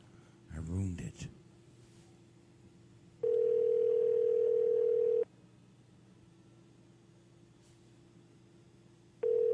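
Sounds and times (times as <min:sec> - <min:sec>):
speech: 0:00.6 - 0:01.4
outgoing phone call ringing tone: 0:03.2 - 0:05.3, 0:09.2 - 0:09.5.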